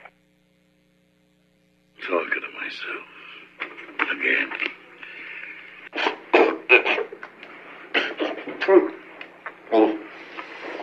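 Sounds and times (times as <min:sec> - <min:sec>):
faint steady hum: 0:00.0 - 0:10.8
speech: 0:02.1 - 0:03.2, 0:04.1 - 0:04.8, 0:08.7 - 0:09.0
person clearing throat: 0:06.0 - 0:07.2, 0:07.9 - 0:08.9
person coughing: 0:06.0 - 0:07.2, 0:07.9 - 0:08.8.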